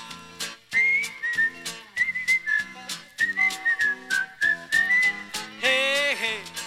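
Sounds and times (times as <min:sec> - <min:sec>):
upbeat music with a steady beat: 0:00.0 - 0:06.6
person whistling a melody: 0:00.7 - 0:05.7.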